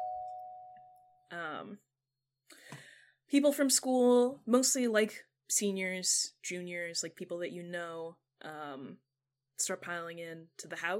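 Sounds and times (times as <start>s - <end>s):
doorbell ringing at a house: 0.0s - 1.1s
speech: 1.3s - 1.9s, 2.5s - 10.9s.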